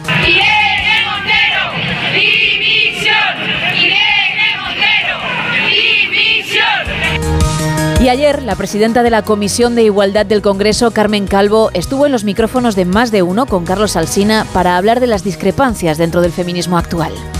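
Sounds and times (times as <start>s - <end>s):
large protest crowd chanting for minister's resignation: 0.0s - 7.7s
speech: 8.0s - 17.3s.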